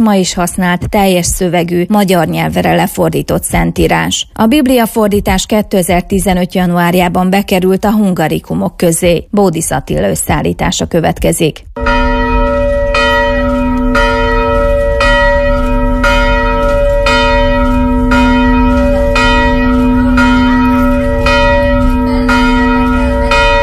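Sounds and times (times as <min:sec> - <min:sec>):
speech: 0:00.0 - 0:12.1
church bells pealing for a celebration: 0:11.8 - 0:23.6.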